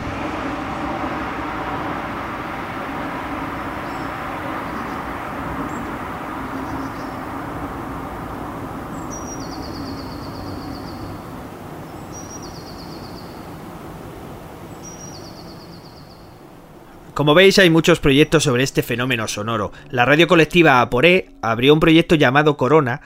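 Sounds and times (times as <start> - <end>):
dense roar of city traffic: 0.0 - 21.4
small birds chirping and trilling: 2.9 - 17.1
speech: 17.2 - 23.0.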